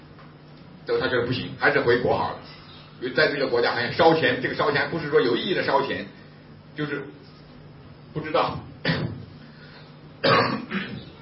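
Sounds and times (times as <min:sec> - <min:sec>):
speech: 0:00.8 - 0:06.2, 0:06.8 - 0:07.2, 0:08.2 - 0:09.0
person with a cold coughing: 0:08.8 - 0:09.3, 0:10.2 - 0:11.2.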